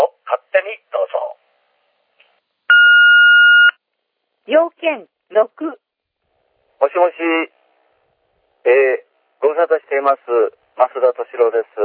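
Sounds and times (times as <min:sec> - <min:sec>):
answering machine beep: 0:02.7 - 0:03.8
speech: 0:04.5 - 0:05.8, 0:06.8 - 0:07.6, 0:08.7 - 0:11.8.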